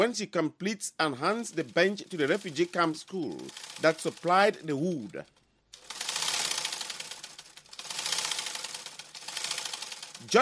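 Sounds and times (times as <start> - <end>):
speech: 0.0 - 5.4, 10.3 - 10.4
sewing machine running: 1.3 - 10.4.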